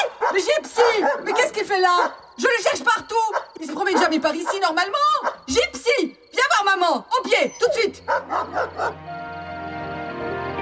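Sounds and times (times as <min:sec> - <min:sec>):
dog barking: 0:00.0 - 0:02.2, 0:03.2 - 0:05.5, 0:07.4 - 0:09.0
speech: 0:00.3 - 0:09.3
dog long steady whining howl: 0:07.4 - 0:09.0.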